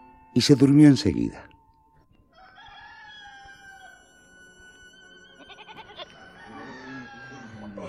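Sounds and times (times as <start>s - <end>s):
speech: 0.4s - 1.5s
rooster crowing loudly: 2.3s - 7.8s
farm animals clucking and bleating faintly: 2.4s - 7.8s.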